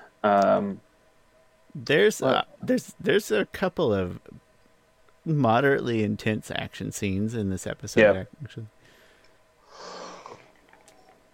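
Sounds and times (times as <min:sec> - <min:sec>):
speech: 0:00.2 - 0:00.9, 0:01.8 - 0:04.4, 0:05.2 - 0:08.8
soft drawn-out yawn: 0:09.7 - 0:10.5.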